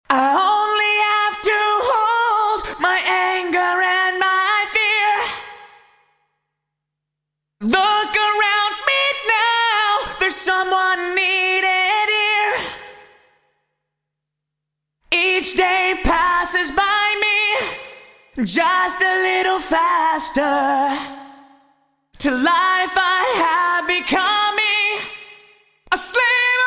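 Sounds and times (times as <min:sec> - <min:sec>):
vocal through Yamaha SPX900 room reverb: 0:00.0 - 0:26.6.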